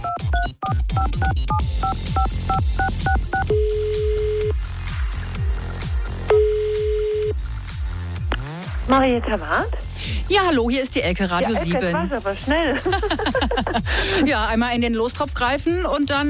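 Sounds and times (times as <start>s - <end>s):
touch-tone beeps of a phone number being dialed: 0.0s - 4.6s, 6.3s - 7.4s
steady rhythmic music bed: 0.0s - 15.6s
speech: 0.4s - 4.0s, 8.9s - 16.2s
long ringback tones on a phone line: 6.3s - 7.4s
laughter: 11.3s - 14.5s.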